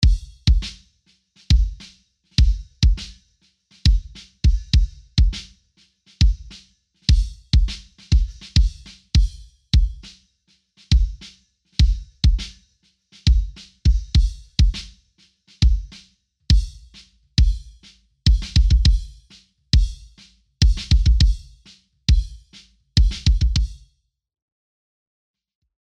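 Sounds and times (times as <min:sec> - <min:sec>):
kick drum: 0:00.0 - 0:00.8, 0:01.5 - 0:01.8, 0:02.4 - 0:03.2, 0:03.8 - 0:05.5, 0:06.2 - 0:10.1, 0:10.9 - 0:12.5, 0:13.2 - 0:14.9, 0:15.6 - 0:23.8.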